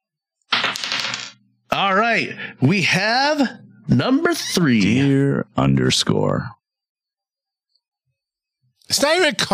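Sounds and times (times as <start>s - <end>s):
dice tumbling across a hard surface: 0.5s - 1.4s
speech: 1.8s - 6.6s, 8.9s - 9.5s.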